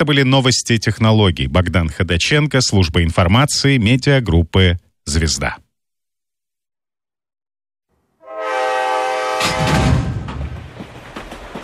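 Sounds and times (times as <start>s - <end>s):
speech: 0.0s - 5.6s
train horn blaring: 8.2s - 9.8s
train wheels clattering over rail joints: 9.5s - 11.6s.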